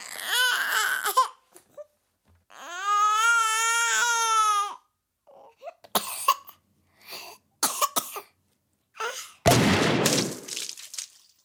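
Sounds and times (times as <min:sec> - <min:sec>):
small baby with a cold crying in stuffy wails: 0:00.0 - 0:01.9, 0:02.5 - 0:05.8
small baby with a cold coughing and sniffling: 0:05.7 - 0:08.4
loud explosion rumbling: 0:09.5 - 0:10.7.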